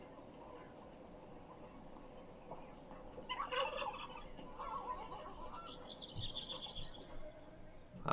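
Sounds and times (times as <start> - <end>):
chickens clucking and squawking: 2.9 - 7.3.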